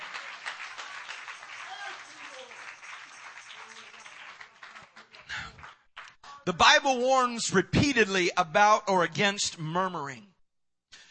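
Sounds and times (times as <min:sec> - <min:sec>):
audience applause: 0:00.0 - 0:06.5
speech: 0:06.5 - 0:10.3.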